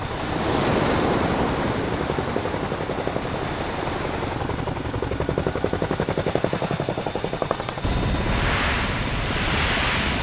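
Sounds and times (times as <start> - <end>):
roar of rushing spray and wind: 0.0 - 10.2
large Chinook helicopter rotors thudding while landing on water: 4.7 - 10.2.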